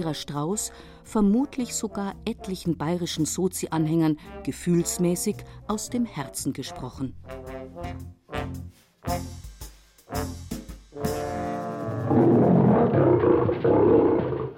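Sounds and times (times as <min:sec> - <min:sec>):
speech: 0:00.0 - 0:08.2, 0:09.0 - 0:09.4, 0:13.0 - 0:14.2
lion roaring: 0:11.7 - 0:14.5.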